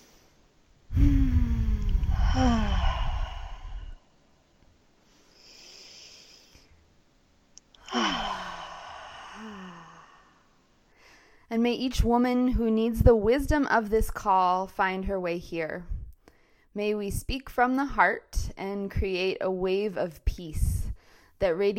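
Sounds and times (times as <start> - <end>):
deep breathing in through the nose and out through the mouth: 0.0 - 4.2, 5.0 - 6.8, 7.7 - 11.5
speech: 11.6 - 15.9, 16.8 - 20.8, 21.4 - 21.7.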